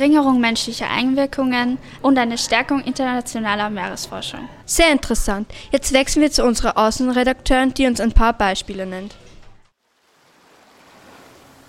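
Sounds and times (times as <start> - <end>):
speech: 0.0 - 9.2
surf washing onto a beach in Italy: 9.8 - 11.6.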